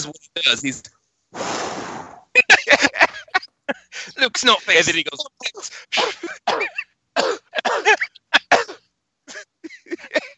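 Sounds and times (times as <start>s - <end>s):
speech: 0.0s - 2.8s, 3.7s - 8.0s
laughter: 2.4s - 6.5s, 7.5s - 8.5s, 9.3s - 10.3s
person coughing: 5.5s - 10.3s
throat clearing: 5.6s - 10.3s.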